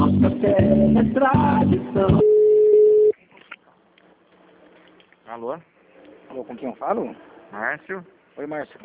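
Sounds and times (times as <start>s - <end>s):
speech: 0.2s - 2.3s, 5.4s - 5.7s, 6.3s - 8.8s
telephone line tone during a call transfer: 2.2s - 3.2s.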